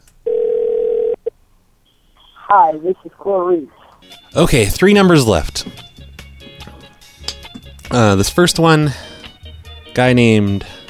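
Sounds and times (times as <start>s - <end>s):
telephone dial tone after a call is hung up: 0.3s - 1.3s
speech: 2.5s - 5.9s, 7.9s - 9.1s, 10.0s - 10.8s.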